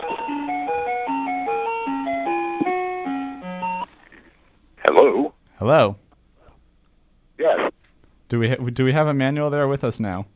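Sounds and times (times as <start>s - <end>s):
ragtime melody heard over a telephone line: 0.0s - 3.9s
speech: 5.6s - 6.0s, 8.3s - 10.3s.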